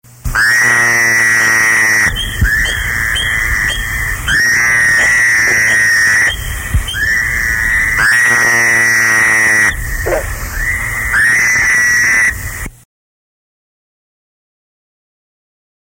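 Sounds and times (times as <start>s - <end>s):
Fowler's toad calling: 0.3s - 12.7s.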